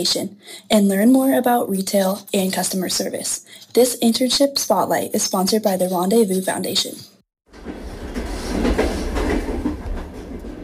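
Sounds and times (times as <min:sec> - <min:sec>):
speech: 0:00.0 - 0:07.1
train rolling on rails: 0:07.5 - 0:10.6.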